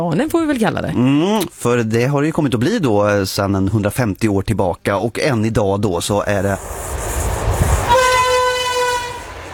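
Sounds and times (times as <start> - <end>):
speech: 0.0 - 7.1
low rumble of a passing train: 6.0 - 9.5
train horn blast: 7.6 - 9.5.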